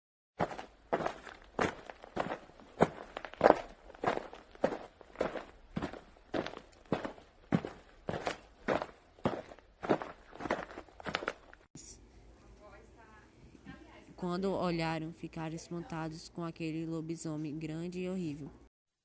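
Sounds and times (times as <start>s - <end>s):
footsteps of a person walking: 0.4s - 11.7s
speech: 14.2s - 18.6s.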